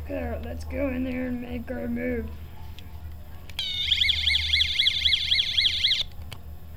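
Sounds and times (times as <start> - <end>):
speech: 0.1 - 2.5
electronic alarm wailing in rapid up-and-down sweeps: 3.6 - 6.1.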